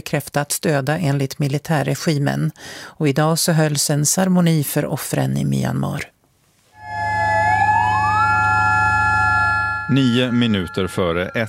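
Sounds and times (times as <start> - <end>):
speech: 0.0 - 6.2, 9.9 - 11.4
siren wailing for earthquake victims in Mandalay Myanmar: 6.8 - 11.4.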